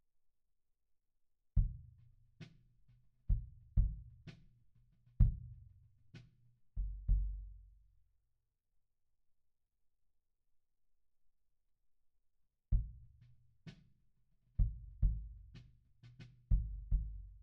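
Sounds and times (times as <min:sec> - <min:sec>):
kick drum: 0:01.6 - 0:02.0, 0:03.3 - 0:04.4, 0:05.2 - 0:05.7, 0:12.7 - 0:13.2, 0:14.6 - 0:15.6, 0:16.5 - 0:17.4.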